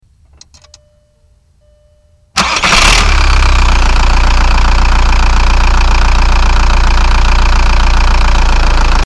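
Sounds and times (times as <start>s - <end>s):
VW TDI diesel engine starting: 2.4s - 9.0s.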